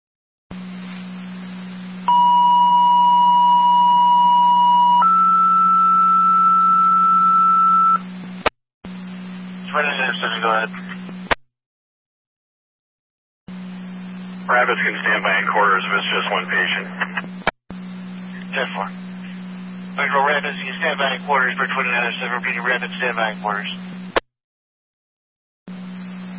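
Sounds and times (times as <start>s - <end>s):
constant hum: 0.5s - 11.4s, 13.5s - 24.2s, 25.7s - 26.3s
two-tone dispatch pager alert over a radio channel: 2.1s - 8.0s
crackly voice over a radio channel: 9.6s - 11.3s, 14.5s - 17.5s, 18.3s - 19.4s, 20.0s - 24.0s
speech: 10.2s - 10.9s, 14.5s - 17.5s, 18.6s - 19.1s, 20.0s - 24.0s.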